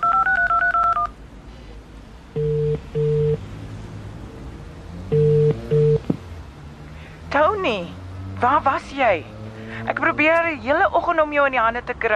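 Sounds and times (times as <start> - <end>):
telephone keypad dialing tones: 0.0 - 1.2, 2.4 - 3.4, 5.1 - 6.0
speech: 7.6 - 12.1.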